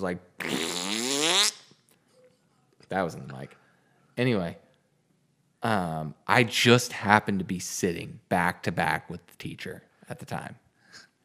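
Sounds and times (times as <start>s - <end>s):
speech: 0.0s - 0.7s, 2.9s - 3.6s, 4.2s - 4.6s, 5.6s - 11.1s
person imitating a fart against a plastic chair: 0.4s - 1.7s.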